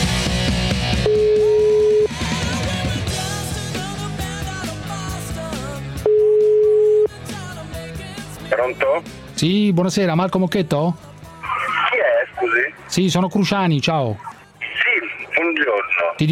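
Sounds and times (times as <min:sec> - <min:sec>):
music playing: 0:00.0 - 0:16.2
outgoing phone line ringback tone: 0:01.0 - 0:02.4, 0:06.0 - 0:07.1
speech: 0:08.7 - 0:11.1, 0:13.0 - 0:14.3, 0:15.5 - 0:16.2.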